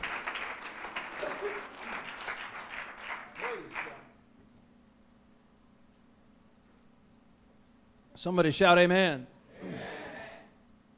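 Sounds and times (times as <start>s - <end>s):
audience at an evening church service clapping: 0.0s - 4.1s
speech: 8.2s - 9.3s.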